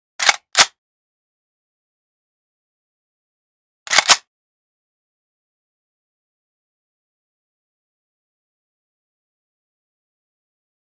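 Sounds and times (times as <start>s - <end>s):
shotgun reloading: 0.2s - 0.7s, 3.9s - 4.2s.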